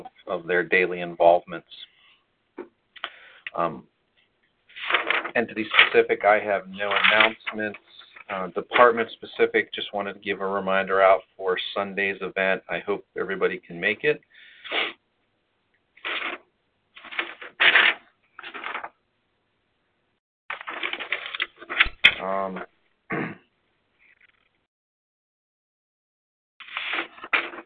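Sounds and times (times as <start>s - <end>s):
speech: 0.0s - 1.9s, 3.6s - 3.9s, 5.3s - 15.0s
paper rustling and crinkling: 4.7s - 9.1s, 16.0s - 16.4s, 17.0s - 19.0s, 20.5s - 22.2s, 26.6s - 27.6s.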